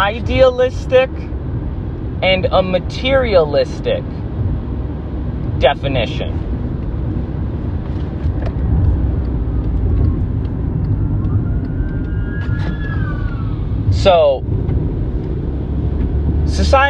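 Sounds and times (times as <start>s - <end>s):
speech: 0.0s - 1.4s, 2.2s - 4.2s, 5.6s - 6.4s, 14.0s - 14.6s, 16.5s - 16.8s
fire truck engine rumbling past: 0.0s - 16.8s
fire truck siren wailing: 10.8s - 14.0s.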